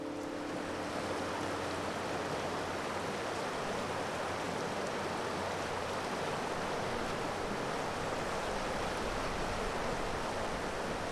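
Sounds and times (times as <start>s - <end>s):
rushing mountain brook: 0.0s - 11.0s.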